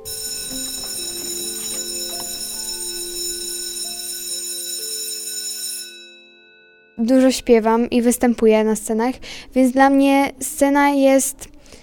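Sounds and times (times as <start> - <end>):
school bell ringing with harsh metallic jangle: 0.0 - 7.4
speech: 7.0 - 11.5.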